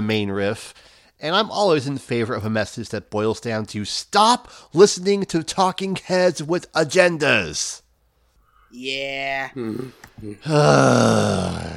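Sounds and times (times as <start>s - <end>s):
speech: 0.0s - 7.8s, 8.7s - 11.7s
person letting out a long exasperated groan: 9.6s - 11.7s.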